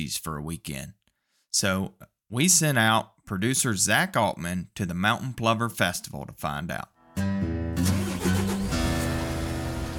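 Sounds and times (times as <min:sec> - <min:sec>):
speech: 0:00.0 - 0:07.9
school bus engine droning on a bumpy dirt road: 0:07.8 - 0:09.9.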